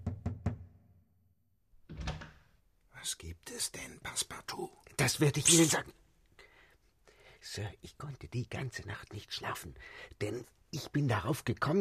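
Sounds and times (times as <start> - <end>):
knocking on the door of a newlywed couple's room: 0.0 - 0.8
speech: 3.0 - 6.0, 7.4 - 11.8.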